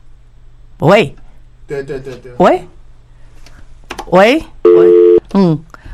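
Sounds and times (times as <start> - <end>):
speech: 0.8 - 2.8, 4.1 - 5.7
telephone busy tone after call disconnects: 4.7 - 5.2.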